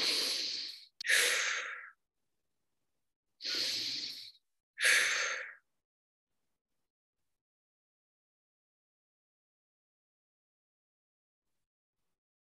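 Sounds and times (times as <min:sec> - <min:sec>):
slow deep breathing close to the microphone: 0:00.0 - 0:02.0, 0:03.4 - 0:05.7.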